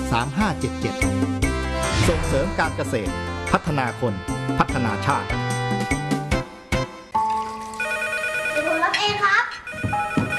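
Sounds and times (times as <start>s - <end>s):
speech: 0.1s - 6.0s
telephone ringing with a melodic electronic ringtone: 7.2s - 10.3s.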